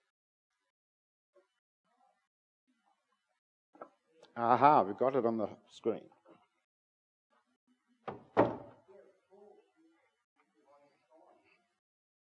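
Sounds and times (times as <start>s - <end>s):
speech: 4.4s - 6.2s
heavy wooden thunks of a chair set down: 8.1s - 8.8s.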